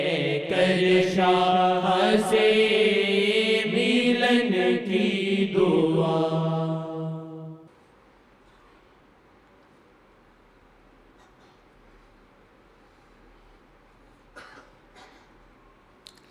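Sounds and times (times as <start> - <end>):
speech: 0.0 - 3.3
steady low hiss: 0.0 - 16.3
person clearing throat: 14.3 - 15.4
person coughing: 14.3 - 15.4.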